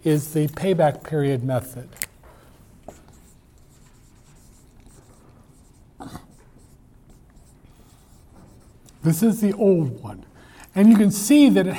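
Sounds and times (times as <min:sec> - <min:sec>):
speech: 0:00.0 - 0:02.0, 0:09.0 - 0:11.7
pencil scratching on paper: 0:02.9 - 0:08.8.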